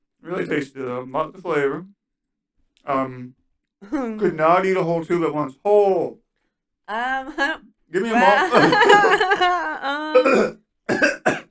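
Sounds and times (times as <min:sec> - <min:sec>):
speech: 0:00.3 - 0:02.0, 0:02.8 - 0:06.2, 0:06.9 - 0:11.4
laughter: 0:08.0 - 0:10.1
person making strained voiced throat sounds: 0:10.0 - 0:11.4
person coughing harshly: 0:10.2 - 0:11.4.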